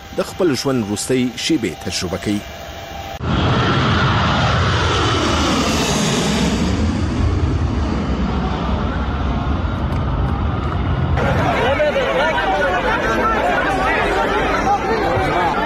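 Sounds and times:
airplane engine roaring near the wing at a crowded airport: 0.0 - 15.6
speech: 0.2 - 3.5
chatter and babble of many people at an airport: 8.8 - 15.6.

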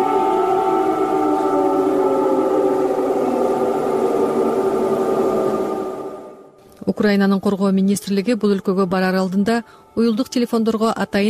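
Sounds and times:
air raid warning siren wailing: 0.0 - 6.6
speech: 7.0 - 11.2.

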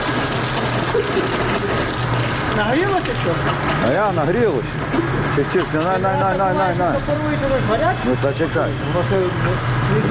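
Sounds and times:
water gurgling through pipes: 0.0 - 10.1
speech: 2.6 - 10.1.

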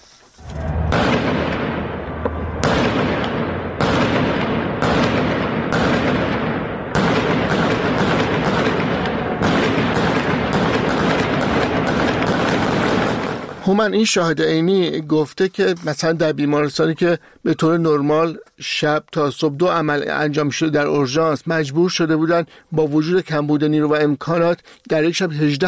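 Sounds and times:
sharp gunshot cracks in a street protest: 0.6 - 13.6
rapid gunfire bursts in a street protest: 2.6 - 13.8
speech: 13.7 - 25.6.

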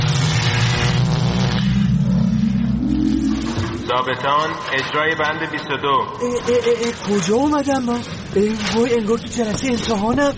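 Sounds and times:
time machine travel effect with revving engine-like drone: 0.0 - 6.6
speech: 3.9 - 10.3.

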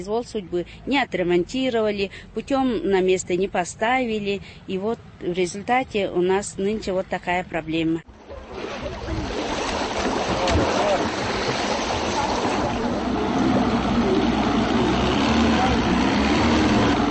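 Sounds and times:
speech: 0.0 - 8.9
rushing river water and spray: 8.3 - 17.1
motorboat engine droning on a river: 9.4 - 17.1.

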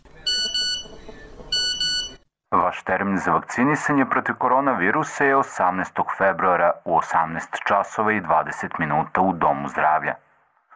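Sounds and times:
phone text message notification double beeps: 0.3 - 2.2
speech: 2.7 - 10.2.

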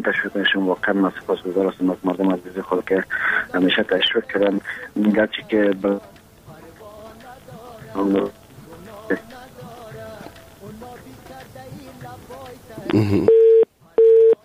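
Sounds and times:
speech: 0.0 - 6.1, 8.0 - 8.4, 9.1 - 9.4, 12.9 - 13.4
telephone busy tone after a dropped call: 13.2 - 14.4.

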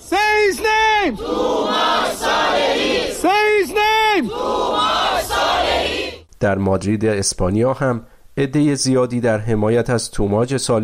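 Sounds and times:
crowd chanting in unison at a street rally in Sweden: 0.0 - 6.3
speech: 1.0 - 1.5, 6.4 - 10.8.

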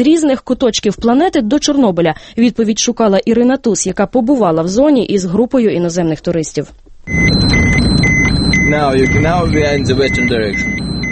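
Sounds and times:
speech: 0.0 - 7.6, 8.7 - 10.8
car engine rumbling in the Chernobyl exclusion zone: 7.1 - 11.1
dosimeter beeping in the Chernobyl exclusion zone: 7.1 - 11.1.

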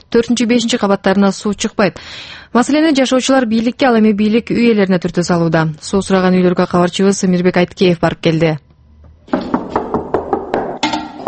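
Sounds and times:
speech: 0.2 - 8.6
knuckles rapping on an apartment door in a multi-storey block: 9.3 - 10.8.

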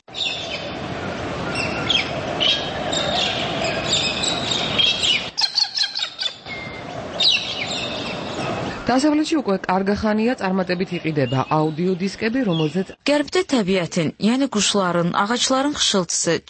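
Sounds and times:
wild birds calling in a Caucasus mountain forest: 0.1 - 13.1
speech: 8.9 - 16.4.

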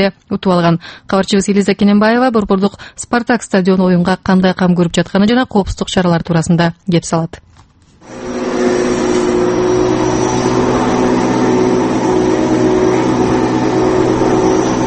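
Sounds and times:
speech: 0.0 - 7.5
mower cutting football stadium pitch grass: 8.0 - 14.8.

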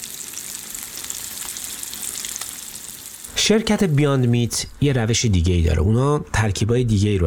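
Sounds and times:
plant-based burger patty with soy leghemoglobin frying in a hot pan: 0.0 - 3.9
speech: 3.4 - 7.2.

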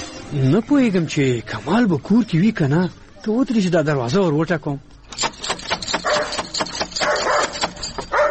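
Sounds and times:
speech: 0.4 - 4.9
dog barking at a house door: 6.0 - 8.2.

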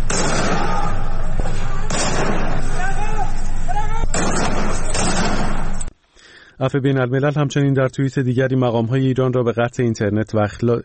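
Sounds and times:
gunshots fired at houses: 0.0 - 3.0, 4.0 - 5.9
voices shouting: 0.0 - 5.0
constant noisy background: 0.0 - 5.9
speech: 6.6 - 10.8.

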